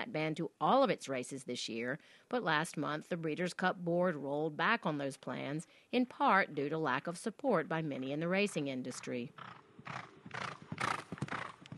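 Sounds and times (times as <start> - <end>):
speech: 0.1 - 10.9
racehorse hoofbeats during a morning training run with a rider: 8.9 - 11.7.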